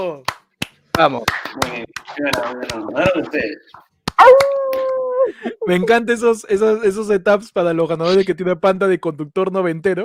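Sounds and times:
speech: 0.0s - 0.3s, 1.0s - 10.0s
people imitating yapping dog barks: 1.6s - 5.9s
person imitating long dog howl: 4.2s - 5.9s.

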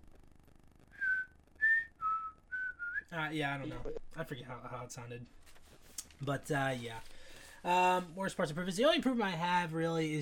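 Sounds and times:
person whistling a short melodic tune: 1.0s - 3.0s
speech: 3.1s - 5.5s, 6.2s - 10.1s.

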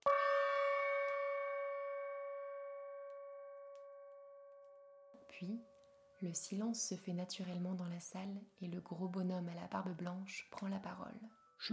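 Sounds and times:
bell strike marking the hour: 0.0s - 6.0s
speech: 5.3s - 11.7s.

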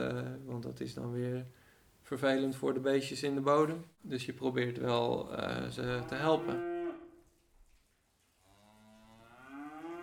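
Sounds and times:
speech: 0.0s - 6.7s
cows mooing outdoors: 5.9s - 7.1s, 8.4s - 10.0s.

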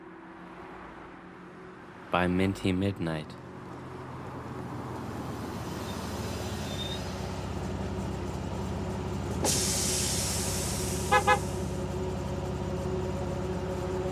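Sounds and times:
speech: 2.1s - 3.4s
city bus engine idling with a low rumble: 4.9s - 14.1s
city bus air brakes releasing a loud hiss: 9.4s - 11.7s
city bus horn honks: 10.9s - 11.7s.

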